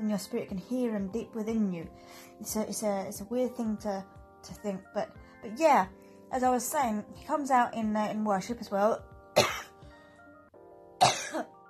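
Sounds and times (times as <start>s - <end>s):
speech: 0.1s - 9.6s
person with a tickle in the throat clearing it: 9.4s - 9.8s, 11.0s - 11.6s.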